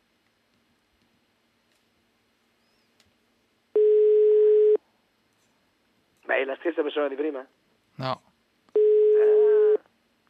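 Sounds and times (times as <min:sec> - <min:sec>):
telephone ringback tone while placing a call: 0:03.8 - 0:04.8, 0:08.8 - 0:09.8
speech: 0:06.4 - 0:08.3.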